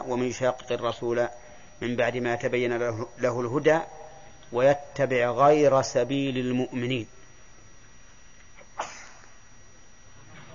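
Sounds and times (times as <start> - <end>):
speech: 0.0 - 7.2
quiet hum: 0.0 - 10.5
person sneezing: 8.6 - 9.4.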